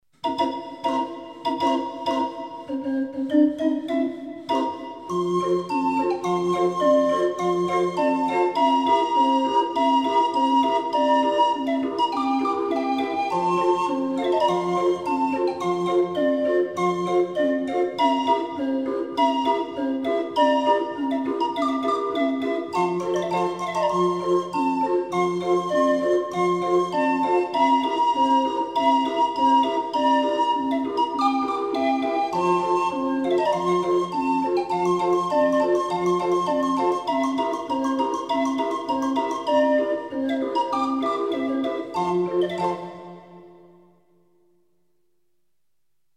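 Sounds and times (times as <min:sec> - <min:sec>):
20-note barrel organ playing: 0:00.2 - 0:43.8.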